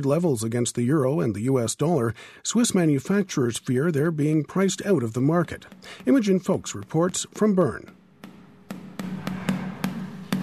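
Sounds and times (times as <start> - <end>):
speech: 0.0 - 8.0
hammer tapping a cheese wheel: 4.5 - 10.4.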